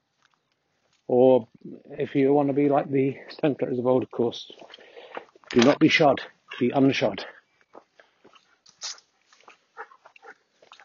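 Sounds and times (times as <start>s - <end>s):
speech: 1.1s - 4.8s, 5.5s - 7.4s
dog snuffling and panting: 9.4s - 10.5s.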